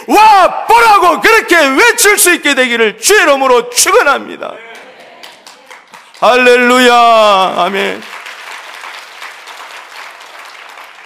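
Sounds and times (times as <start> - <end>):
speech: 0.1 - 4.7, 6.2 - 8.1
audience clapping in a large room: 4.7 - 11.0.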